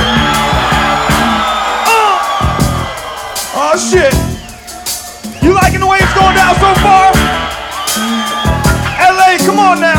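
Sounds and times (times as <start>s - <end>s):
high whoops: 0.0s - 5.5s, 7.6s - 9.0s
audience screaming and cheering: 0.0s - 9.9s
steady thumping beat: 0.0s - 9.9s.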